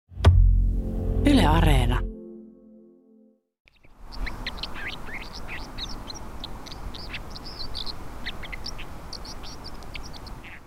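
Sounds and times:
brief tonal sound: 0.2s - 3.4s
speech: 1.5s - 2.1s
white-throated dipper singing: 3.7s - 10.6s.

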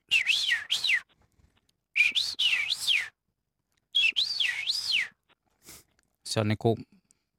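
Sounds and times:
person whistling imitation of scarlet rosefinch song: 0.0s - 1.1s, 2.0s - 3.2s, 4.0s - 5.2s
speech: 6.3s - 7.0s.

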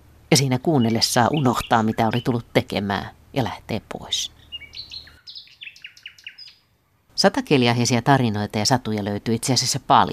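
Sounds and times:
low rumble: 0.0s - 10.1s
nightingale singing: 0.3s - 2.8s, 4.0s - 6.7s
speech: 0.3s - 4.4s, 7.2s - 10.1s.

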